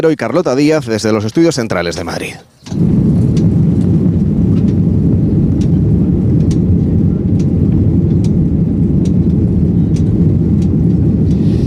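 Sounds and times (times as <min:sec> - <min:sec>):
speech: 0:00.0 - 0:03.2
airplane roar heading to Montevideo: 0:02.7 - 0:11.6
faint clicks: 0:05.5 - 0:06.7, 0:07.3 - 0:08.4, 0:09.0 - 0:11.5.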